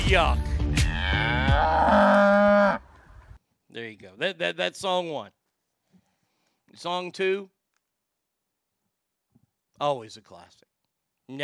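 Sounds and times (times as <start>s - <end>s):
speech: 0.1s - 2.4s, 3.7s - 5.4s, 6.7s - 7.6s, 9.8s - 10.7s, 11.3s - 11.4s
cow mooing: 1.0s - 2.9s.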